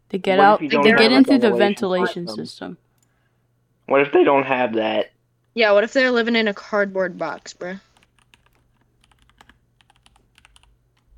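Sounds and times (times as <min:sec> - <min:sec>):
faint low hum: 0:00.0 - 0:11.1
speech: 0:00.1 - 0:02.8, 0:03.9 - 0:07.9
typing on a computer keyboard: 0:07.9 - 0:11.1.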